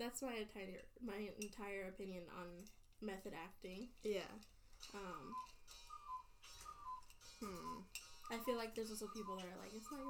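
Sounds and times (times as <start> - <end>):
speech: 0.0 - 5.8, 7.4 - 10.0
cuckoo clock sing-song tones: 4.8 - 10.0.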